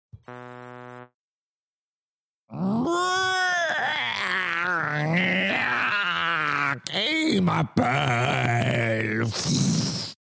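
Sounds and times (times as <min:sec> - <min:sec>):
short steady buzzing tone: 0:00.1 - 0:01.2
person imitating a big sheep bleating: 0:02.5 - 0:09.2
speech: 0:07.3 - 0:09.8.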